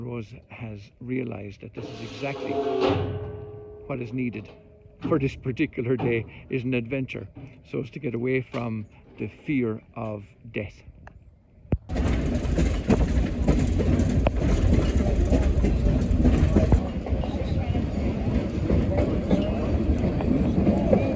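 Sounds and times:
speech: 0.0 - 10.9
train rumbling along tracks heard from inside: 1.2 - 9.1, 11.9 - 21.1
faint indistinct voices: 1.4 - 9.4, 14.4 - 21.1.

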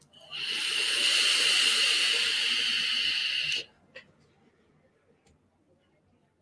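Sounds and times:
airy hiss of a long draw on a sub-ohm vape tank: 0.2 - 3.7.

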